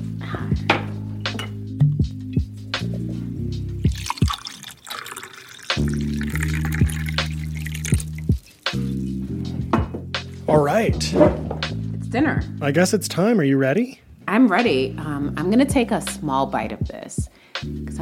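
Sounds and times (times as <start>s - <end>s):
soft steady music: 0.0s - 17.9s
wine pouring into a glass: 3.8s - 9.0s
crisp drips and little splashes of wine: 3.8s - 9.2s
speech: 10.8s - 11.5s, 12.1s - 17.9s.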